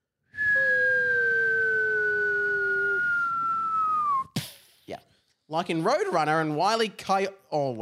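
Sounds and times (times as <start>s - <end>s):
voice imitating a cartoon falling whistle: 0.4s - 4.4s
speech: 5.5s - 7.8s.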